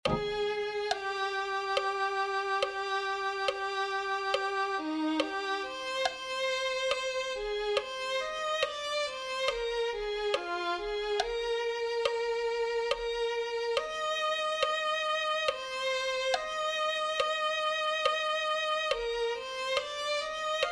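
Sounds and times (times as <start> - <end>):
violin melody: 0.0 - 20.7.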